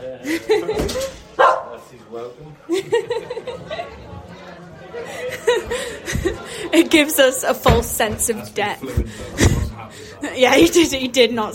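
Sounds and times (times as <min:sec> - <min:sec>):
people chuckling: 0:00.0 - 0:01.4, 0:02.5 - 0:07.2, 0:08.8 - 0:10.6
people chattering: 0:00.0 - 0:11.5
dog barking in short loud bursts: 0:01.4 - 0:01.8
speech: 0:06.9 - 0:11.5.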